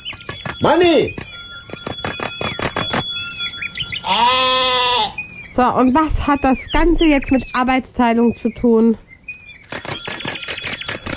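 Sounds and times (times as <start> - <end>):
bicycle bell rung by a sheep: 0.0 - 4.4, 9.6 - 11.1
speech: 0.6 - 1.3, 4.1 - 4.8, 5.6 - 9.0.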